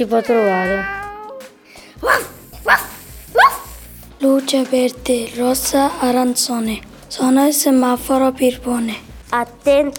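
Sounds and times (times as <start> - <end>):
speech: 0.0 - 1.0, 2.0 - 3.5, 4.2 - 9.9
dog barking at a veterinary clinic: 2.0 - 3.8.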